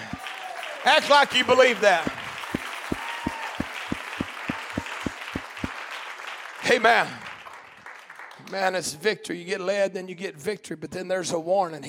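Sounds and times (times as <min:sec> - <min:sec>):
congregation clapping in unison: 0:00.0 - 0:08.7
speech: 0:00.8 - 0:02.2, 0:06.7 - 0:07.2, 0:08.5 - 0:11.8.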